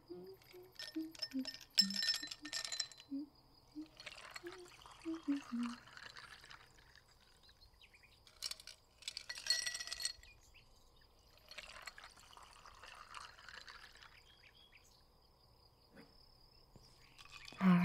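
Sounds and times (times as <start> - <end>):
glasses clinking while serving lemonade: 0.4 - 3.1, 3.8 - 6.7, 8.3 - 10.4, 11.4 - 14.1
liquid pouring: 3.8 - 10.1, 11.3 - 14.4, 17.0 - 17.6.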